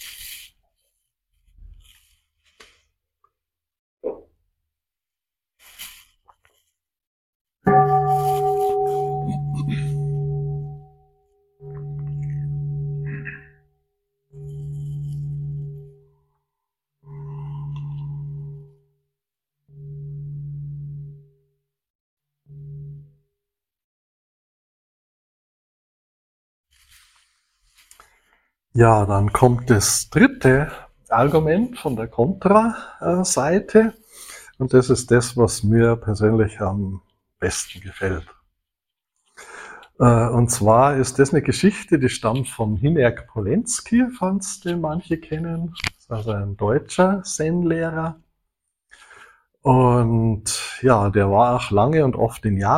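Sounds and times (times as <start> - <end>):
deep bell tolling: 7.7 - 13.6
speech: 28.8 - 34.0, 34.6 - 38.4, 40.0 - 48.2, 49.6 - 52.7.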